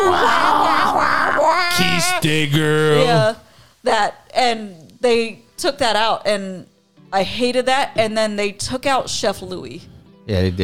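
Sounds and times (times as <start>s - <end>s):
voice imitating a cartoon seagull screeching a romantic song: 0.2s - 2.3s
speech: 2.0s - 10.6s.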